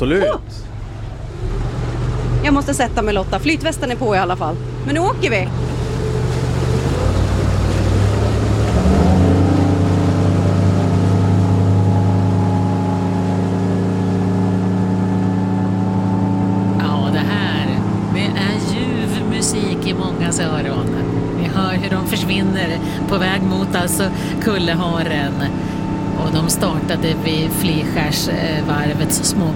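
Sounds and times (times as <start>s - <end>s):
speech: 0.0s - 0.8s, 2.4s - 5.8s, 23.8s - 29.5s
motorboat engine revving and accelerating from a small-boat harbour: 0.0s - 29.5s.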